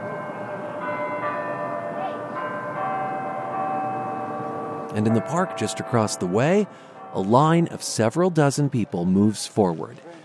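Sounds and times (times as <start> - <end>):
city hall tower chimes ringing in Denver: 0.0 - 8.2
speech: 4.9 - 10.2.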